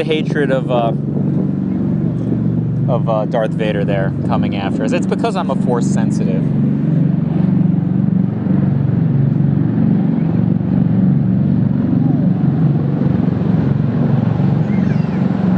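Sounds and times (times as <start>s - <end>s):
speech: 0.0s - 1.1s, 2.9s - 6.6s
vertical takeoff and landing aircraft engine roar: 0.0s - 15.5s.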